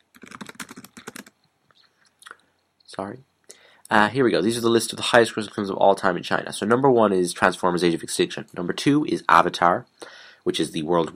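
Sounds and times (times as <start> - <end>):
typing on a computer keyboard: 0.0 - 1.4
speech: 2.9 - 3.3, 3.9 - 11.1.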